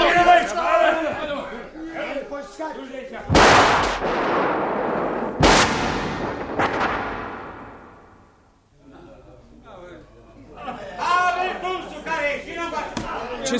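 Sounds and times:
people talking: 0:00.0 - 0:03.4, 0:08.8 - 0:13.5
loud gunshots from an execution by shooting in a garden: 0:03.3 - 0:08.4.

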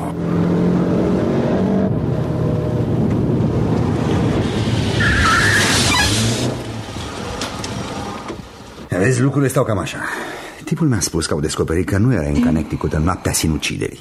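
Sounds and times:
car road and engine noise: 0:00.0 - 0:10.6
car tires squealing while braking to a stop: 0:04.2 - 0:08.9
speech: 0:09.1 - 0:13.9.

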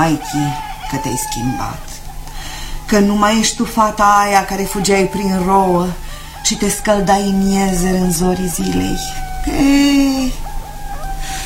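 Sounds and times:
speech: 0:00.0 - 0:02.0, 0:02.9 - 0:10.4
roosters crowing: 0:00.0 - 0:11.4.

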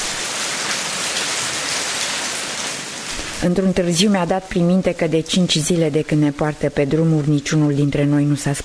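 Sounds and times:
rain on a hard surface: 0:00.0 - 0:08.6
speech: 0:03.4 - 0:08.6.

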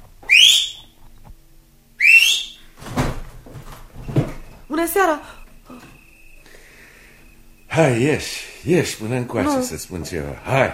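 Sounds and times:
person whistling short rising whistles: 0:02.0 - 0:02.6
speech: 0:04.8 - 0:05.4, 0:07.8 - 0:10.7.

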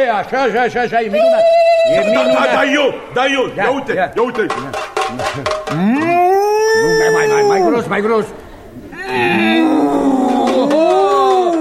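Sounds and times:
speech: 0:00.2 - 0:06.3, 0:07.1 - 0:08.4
person imitating a deep ox-like bellow: 0:04.5 - 0:07.8, 0:08.9 - 0:11.5.

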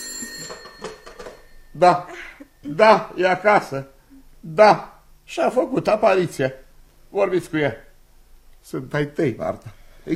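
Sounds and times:
telephone bell ringing with bright metallic trill: 0:00.0 - 0:01.9
speech: 0:01.8 - 0:07.8, 0:08.6 - 0:10.1.

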